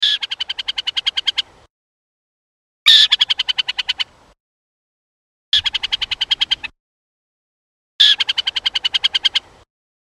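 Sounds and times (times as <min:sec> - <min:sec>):
burrowing owl alarm call: 0:00.0 - 0:01.5, 0:02.9 - 0:04.1, 0:05.6 - 0:06.7, 0:08.0 - 0:09.5.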